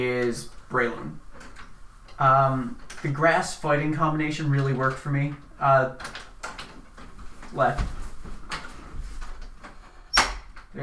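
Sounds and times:
speech: 0:00.0 - 0:01.5, 0:02.2 - 0:06.2, 0:07.5 - 0:08.0
sharp metallic clicks of a door lock being jiggled: 0:10.1 - 0:10.7.

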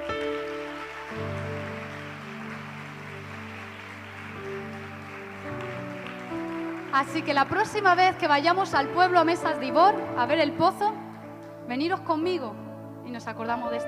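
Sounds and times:
crowd clapping: 0:00.0 - 0:10.0
speech: 0:06.9 - 0:11.0, 0:11.7 - 0:13.8.

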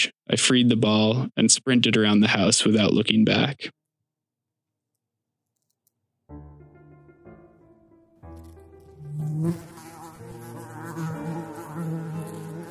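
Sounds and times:
speech: 0:00.0 - 0:03.8, 0:09.4 - 0:09.7
large wasp buzzing in flight: 0:08.3 - 0:12.6.

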